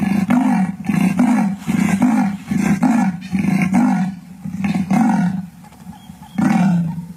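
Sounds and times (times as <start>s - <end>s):
leopard roaring: 0.0s - 7.1s.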